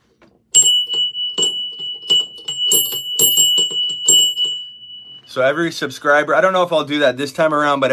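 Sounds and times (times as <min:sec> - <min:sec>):
handheld bell ringing: 0:00.5 - 0:05.5
speech: 0:05.4 - 0:07.9.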